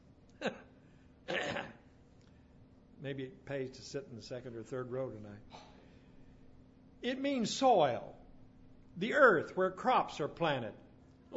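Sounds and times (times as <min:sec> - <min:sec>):
speech: 0:00.4 - 0:00.6, 0:03.0 - 0:05.7, 0:07.0 - 0:08.2, 0:09.0 - 0:11.3
person clearing throat imitating a Hebrew guttural sound: 0:00.4 - 0:00.7, 0:01.3 - 0:01.9.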